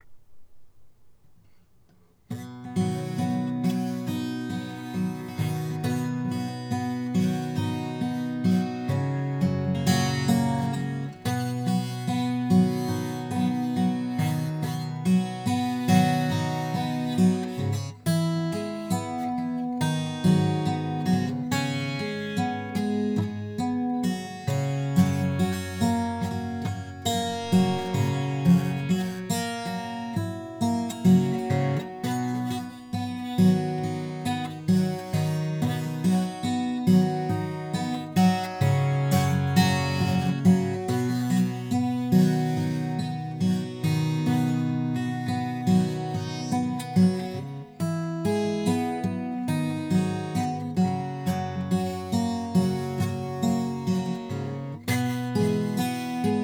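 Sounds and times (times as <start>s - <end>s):
guitar pick strum: 2.3s - 56.4s.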